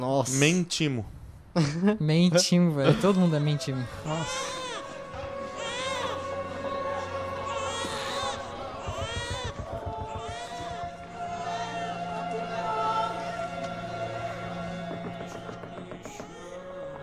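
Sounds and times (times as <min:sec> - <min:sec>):
speech: 0:00.0 - 0:04.6
child crying in a film scene: 0:04.1 - 0:13.3
rhythmic thumping: 0:05.2 - 0:17.0.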